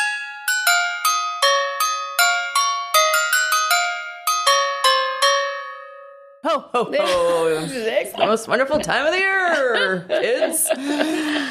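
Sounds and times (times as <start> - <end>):
jingle bells chiming a festive jingle: 0.0 - 6.2
speech: 6.4 - 11.4
laughter: 7.0 - 11.4.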